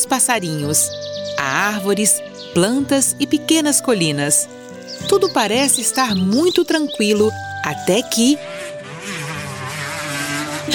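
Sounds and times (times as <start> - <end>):
speech: 0.0 - 8.6
motorcycle racing at full speed along dusty routes among trees and hills: 5.2 - 10.7.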